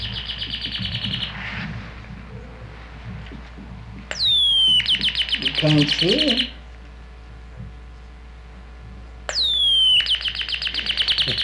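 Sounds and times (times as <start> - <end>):
loud sharply descending whistled bird call: 0.0 - 3.4, 4.1 - 6.7, 9.3 - 11.4
bird chirping trill: 0.0 - 7.2, 7.8 - 11.4
speech: 5.6 - 6.6.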